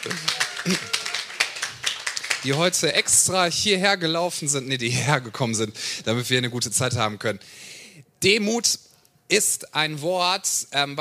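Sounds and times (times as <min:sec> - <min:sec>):
audience members clapping: 0:00.0 - 0:03.4
speech: 0:00.7 - 0:00.9, 0:02.4 - 0:10.9.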